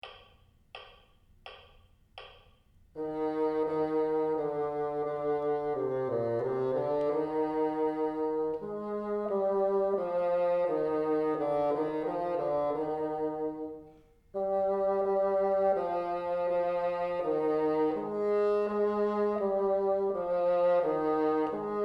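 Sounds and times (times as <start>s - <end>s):
bassoon: 3.0s - 21.8s.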